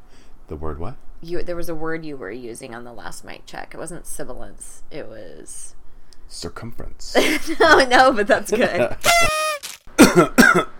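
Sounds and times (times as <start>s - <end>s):
speech: 0.5s - 9.3s, 10.0s - 10.7s
person clearing throat: 10.0s - 10.7s.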